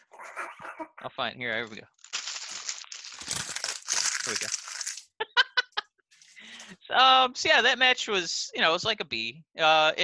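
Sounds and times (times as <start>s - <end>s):
speech: 0.8s - 2.0s, 4.2s - 4.6s, 6.9s - 10.0s
paper being crumpled: 2.0s - 5.1s
laughter: 5.2s - 5.9s.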